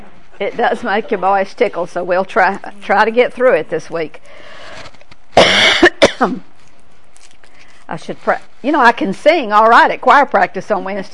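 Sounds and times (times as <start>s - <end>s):
speech: 0.4s - 4.8s, 5.9s - 6.5s, 7.9s - 11.1s
person coughing: 5.4s - 6.4s.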